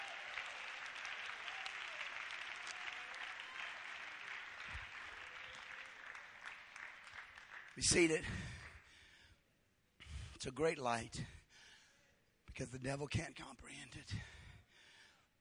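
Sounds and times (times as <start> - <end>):
large audience clapping hands: 0.0 - 8.9
speech: 7.8 - 8.6, 10.4 - 11.4, 12.6 - 14.4.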